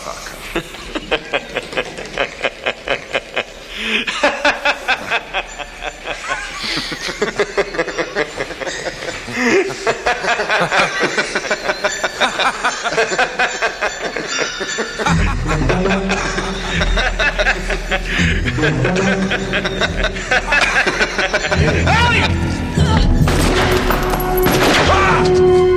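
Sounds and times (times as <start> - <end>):
laughter: 0.0 - 23.2
loud dense action film soundtrack: 15.1 - 25.7
gunfire in an action film scene: 23.2 - 25.2.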